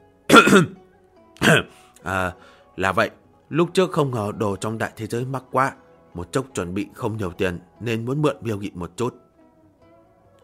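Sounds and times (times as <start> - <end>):
person clearing throat: 0.3 - 0.8, 1.4 - 1.8
speech: 0.5 - 0.8, 1.4 - 9.2.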